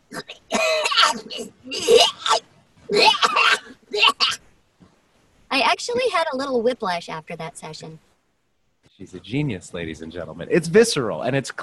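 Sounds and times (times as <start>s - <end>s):
voice imitating a trash can vomiting with coughing and retching: 0.1s - 4.4s
speech: 6.2s - 8.1s, 9.0s - 11.6s.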